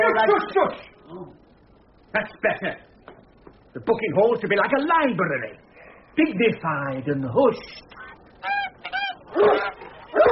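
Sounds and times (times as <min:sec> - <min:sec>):
speech: 0:00.2 - 0:01.4, 0:02.1 - 0:02.9, 0:03.7 - 0:08.6, 0:09.3 - 0:10.3
flock of farm Christmas geese honking in a railway station booking hall: 0:08.4 - 0:10.0.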